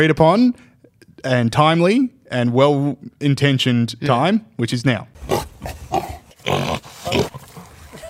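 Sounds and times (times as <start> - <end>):
speech: 0.0 - 7.2
pig grunting and snorting: 5.2 - 8.0.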